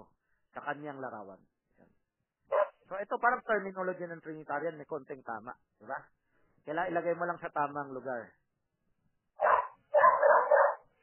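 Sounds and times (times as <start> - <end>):
speech: 0.6 - 2.0, 2.9 - 8.4
dog barking: 2.5 - 2.8, 9.4 - 10.9.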